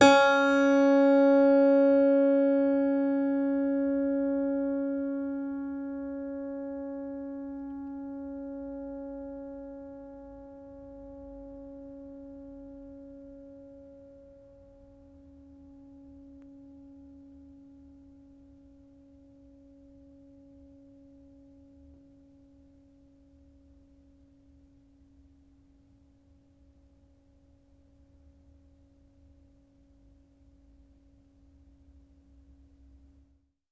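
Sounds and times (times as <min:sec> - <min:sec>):
plucked piano strings: 0:00.0 - 0:15.5.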